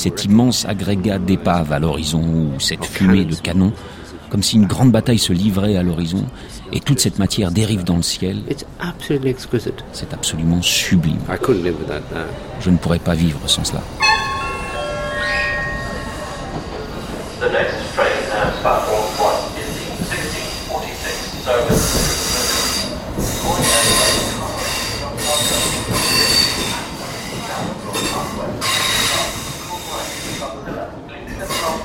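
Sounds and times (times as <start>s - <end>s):
speech: 0.0s - 14.0s
train in Dublin rumbling and clattering on rails: 9.8s - 31.8s
high metallic train wheel squeals: 14.0s - 17.3s.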